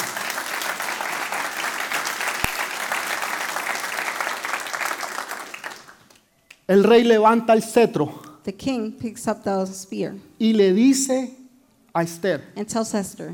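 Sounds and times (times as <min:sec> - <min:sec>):
audience applauding loudly: 0:00.0 - 0:06.2
speech: 0:06.7 - 0:11.4, 0:12.0 - 0:13.3.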